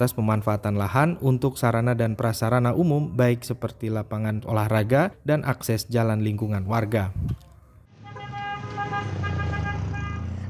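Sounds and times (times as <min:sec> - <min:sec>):
speech: 0:00.0 - 0:07.4
low engine and traffic rumble: 0:00.0 - 0:10.4
car horn blast in busy street traffic: 0:07.9 - 0:10.4.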